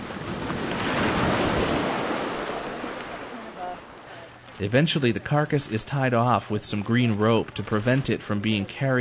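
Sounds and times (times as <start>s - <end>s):
ocean surf crashing against rocks: 0.0s - 4.5s
speech: 4.6s - 8.9s.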